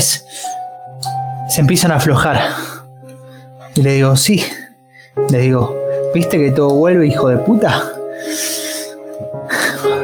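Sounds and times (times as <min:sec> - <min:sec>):
speech: 0:00.0 - 0:00.4, 0:01.5 - 0:02.7, 0:03.8 - 0:04.6, 0:05.2 - 0:08.5
person imitating nervous heavy breathing: 0:00.2 - 0:00.8, 0:02.4 - 0:03.8, 0:04.4 - 0:06.1, 0:07.7 - 0:10.0.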